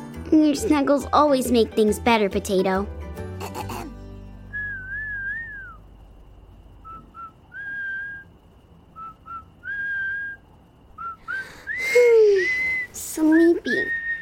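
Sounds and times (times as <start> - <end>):
speech: 0.3 - 3.0
person whistling a simple tune: 4.5 - 5.8, 6.8 - 8.3, 9.0 - 10.4, 11.0 - 14.1.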